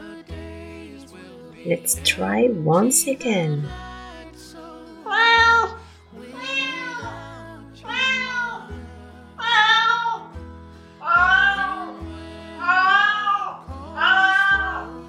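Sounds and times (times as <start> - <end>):
speech: 1.6 - 3.9
cat meowing: 5.1 - 5.7, 6.4 - 7.0, 7.9 - 8.6, 9.4 - 10.2, 11.0 - 11.9, 12.6 - 14.8.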